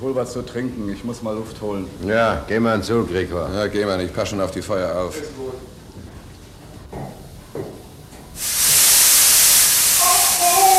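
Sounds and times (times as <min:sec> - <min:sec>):
speech: 0:00.0 - 0:05.8
steam hissing from a burst steam pipe: 0:08.3 - 0:10.7.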